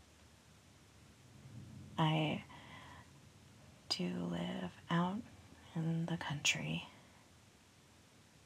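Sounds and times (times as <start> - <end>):
low rumble of thunder in the countryside: 1.4 - 2.5
speech: 2.0 - 2.5, 3.9 - 6.9.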